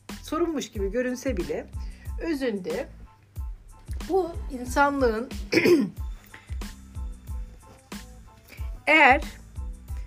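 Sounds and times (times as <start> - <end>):
speech: 0.3 - 3.0, 4.1 - 6.0, 8.9 - 9.4
person coughing: 5.4 - 6.1
throat clearing: 5.5 - 6.0.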